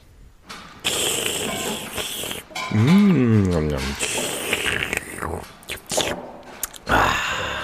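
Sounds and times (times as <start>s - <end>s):
loud wet slurping while eating: 0.8s - 2.5s, 4.0s - 6.9s
chewing noises: 0.8s - 6.9s
speech: 2.7s - 4.1s.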